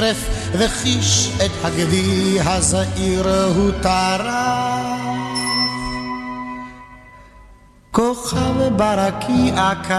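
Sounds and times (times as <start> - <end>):
speech: 0.0 - 4.9, 8.2 - 9.9
bell ringing: 5.4 - 7.7.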